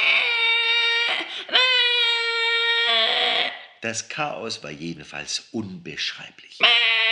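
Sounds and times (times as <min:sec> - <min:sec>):
baby screaming and crying: 0:00.0 - 0:03.7, 0:06.6 - 0:07.1
speech: 0:03.8 - 0:07.0.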